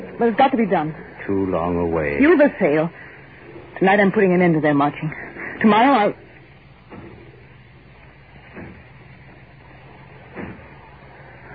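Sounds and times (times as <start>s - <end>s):
steady rumbling background: 0.0s - 11.5s
speech: 0.2s - 3.0s, 3.8s - 6.2s
heavy pounding thuds on a door: 8.4s - 9.4s, 10.2s - 10.9s.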